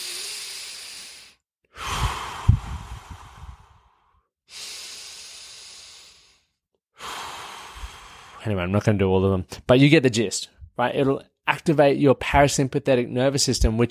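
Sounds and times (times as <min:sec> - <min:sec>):
slow deep breaths as a relaxation exercise: 0:00.0 - 0:08.5
speech: 0:08.4 - 0:13.9.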